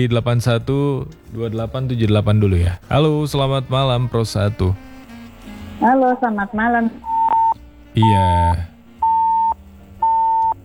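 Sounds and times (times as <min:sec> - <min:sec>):
speech: 0:00.0 - 0:04.9, 0:05.8 - 0:07.1, 0:08.0 - 0:08.7
phone line tone beeps after a call-in caller's connection drops: 0:07.0 - 0:08.2, 0:09.0 - 0:10.6.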